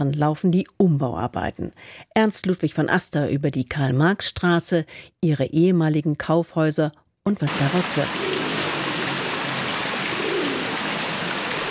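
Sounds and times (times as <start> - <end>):
speech: 0.0 - 8.4
dozens of pigeons cooing while pecking: 7.5 - 11.6
fountain splashing in front of a town hall: 7.5 - 11.6.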